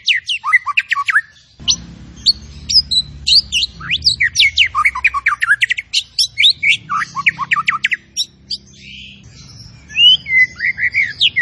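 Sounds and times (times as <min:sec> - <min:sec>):
zebra finch singing a medley of sharp chirps and slurred whistles: 0:00.0 - 0:11.4
low hum: 0:01.6 - 0:10.4.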